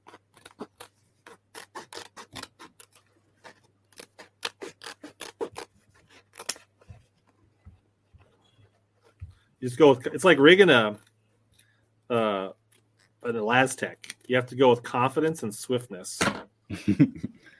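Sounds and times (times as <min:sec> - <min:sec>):
scissors cutting tape: 0:00.0 - 0:06.7
speech: 0:09.6 - 0:11.0, 0:13.3 - 0:17.4.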